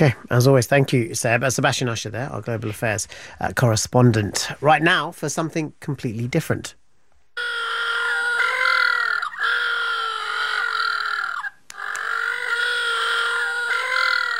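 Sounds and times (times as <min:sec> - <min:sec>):
speech: 0:00.0 - 0:06.8
little blue penguins calling in a braying chorus: 0:07.4 - 0:14.3.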